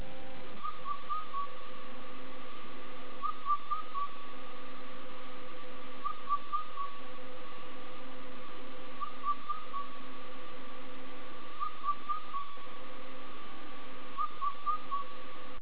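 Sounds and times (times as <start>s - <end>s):
Indian cuckoo calling: 0.6s - 1.7s, 3.2s - 4.2s, 6.0s - 7.0s, 9.0s - 10.0s, 11.6s - 12.7s, 14.2s - 15.2s.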